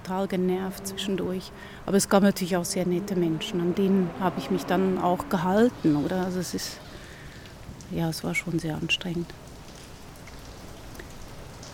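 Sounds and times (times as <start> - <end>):
speech: 0.1 - 6.9, 7.9 - 9.4
steady rain pattering on a hard surface: 5.2 - 11.7.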